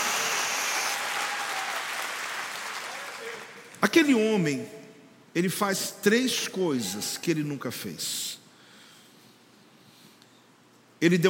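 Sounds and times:
audience at a church service applauding: 0.0 - 3.7
speech: 3.8 - 8.4, 11.0 - 11.2.

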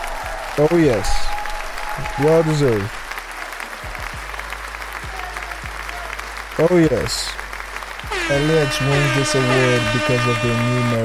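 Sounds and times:
dense clapping from a group: 0.0 - 11.0
speech: 0.6 - 1.3, 2.0 - 3.0, 6.6 - 7.4, 8.3 - 11.0.

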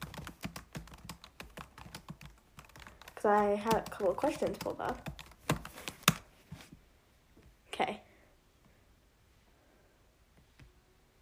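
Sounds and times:
typing on a computer keyboard: 0.0 - 6.2
speech: 3.2 - 5.2.

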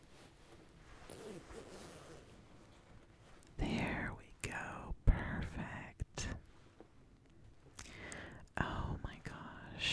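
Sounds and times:
faint hiss: 0.0 - 9.9
dress zipper zipped up the back of a dress: 0.9 - 2.6.

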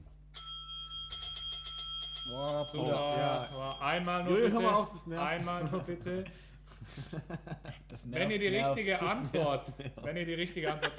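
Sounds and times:
bright game bell pressed by players in a guessing game: 0.4 - 5.0
speech: 2.3 - 10.9
laughter: 4.4 - 8.1, 9.3 - 10.9.

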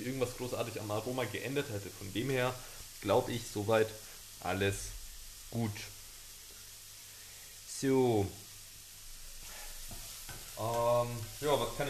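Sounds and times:
speech: 0.0 - 6.0, 7.8 - 8.4, 10.6 - 11.8
chorizo with onions and garlic sizzling in a pan: 0.0 - 11.8
soft stirring in a pan: 9.4 - 11.8.

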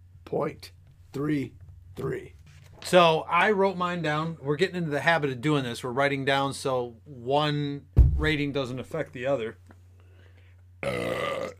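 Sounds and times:
speech: 0.3 - 9.6, 10.8 - 11.2
low hum: 8.0 - 9.1
burp: 10.8 - 11.5.

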